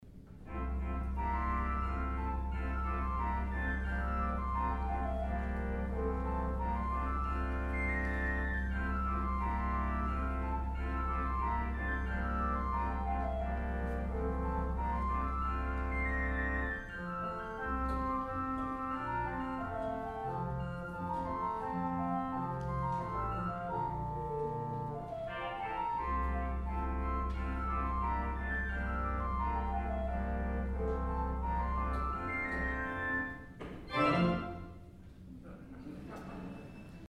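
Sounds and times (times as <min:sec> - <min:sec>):
fife tune: 0:00.5 - 0:34.9.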